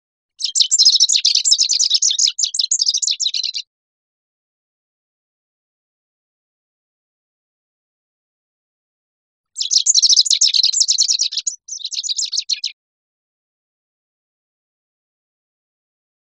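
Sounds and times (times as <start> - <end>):
rufous-crowned sparrow making fast high twittering chatter: 0.4 - 3.7, 9.6 - 12.8.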